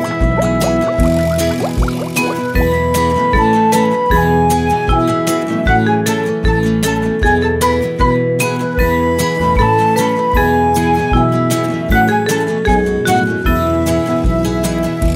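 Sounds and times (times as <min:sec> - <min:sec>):
bouncy music with steady bass and drums: 0:00.0 - 0:15.1
underwater bubbling gurgles: 0:00.2 - 0:02.8.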